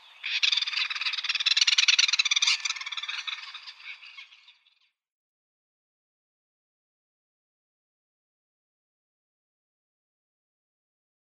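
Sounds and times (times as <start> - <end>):
great spotted cuckoo chattering: 0.0 - 4.8.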